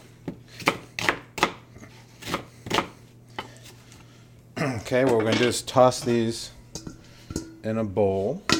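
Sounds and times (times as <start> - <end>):
knife chopping onions on a board: 0.6 - 1.6, 2.2 - 3.0
speech: 4.9 - 6.6, 7.6 - 8.5.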